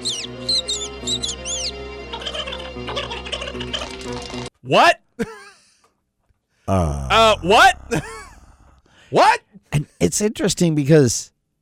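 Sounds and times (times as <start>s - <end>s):
sparrow chirping: 0.0s - 2.6s
speech: 4.6s - 5.4s, 6.7s - 8.2s, 9.1s - 9.4s, 10.0s - 11.3s.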